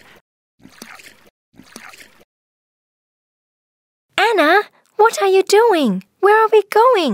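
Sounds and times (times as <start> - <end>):
two oars rowing a boat through water: 0.0 - 2.2
speech: 5.0 - 7.1.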